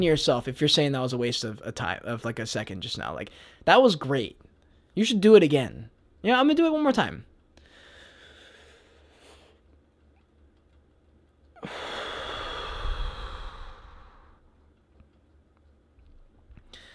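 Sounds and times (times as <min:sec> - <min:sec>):
speech: 0:00.0 - 0:04.4, 0:05.0 - 0:07.3, 0:11.6 - 0:11.9
slow deep breath drawn in and let out: 0:03.3 - 0:03.6, 0:07.6 - 0:09.7, 0:11.6 - 0:14.6, 0:16.7 - 0:16.9.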